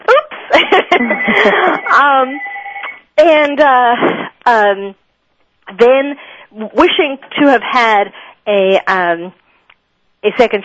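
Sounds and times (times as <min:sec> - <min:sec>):
laughter: 0:00.5 - 0:02.0
speech: 0:01.0 - 0:02.5, 0:03.2 - 0:05.0, 0:05.7 - 0:09.4, 0:10.2 - 0:10.6
phone ringing with a melodic ringtone: 0:01.0 - 0:03.0.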